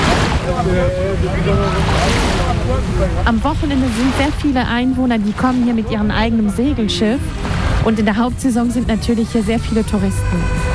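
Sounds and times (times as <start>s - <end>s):
waves rolling onto a white sand beach in Normandy: 0.0s - 8.3s
gusty wind noise: 0.0s - 10.7s
speech: 0.6s - 10.7s.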